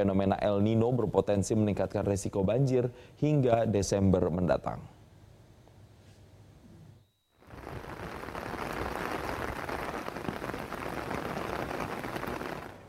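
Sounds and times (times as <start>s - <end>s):
speech: 0.0s - 5.0s
heavy rain striking surfaces: 7.5s - 12.8s.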